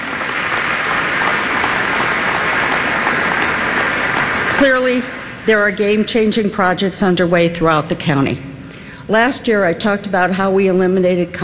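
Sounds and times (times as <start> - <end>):
audience applause at a county community address: 0.0 - 5.2
speech: 4.6 - 8.5, 9.1 - 11.4.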